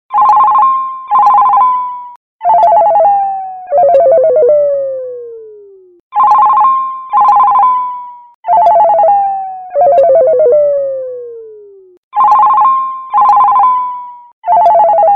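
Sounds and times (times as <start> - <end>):
crank ringtone: 0.1 - 15.1.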